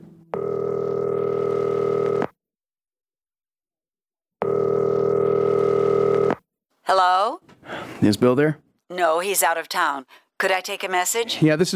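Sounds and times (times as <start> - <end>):
phone line ringback tones on an outgoing call from a small-town jail: 0.3 - 2.3, 4.4 - 6.3
speech: 6.9 - 7.4, 8.0 - 11.7.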